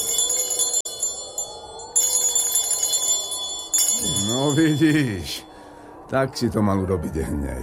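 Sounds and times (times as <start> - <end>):
small bell ringing at a city gate: 0.0 - 5.5
speech: 4.5 - 5.5, 6.1 - 7.6.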